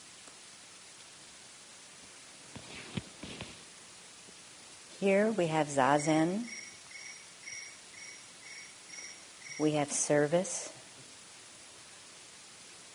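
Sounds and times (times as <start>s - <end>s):
speech: 5.0s - 6.6s, 9.6s - 10.8s
crickets chirping: 5.6s - 10.4s.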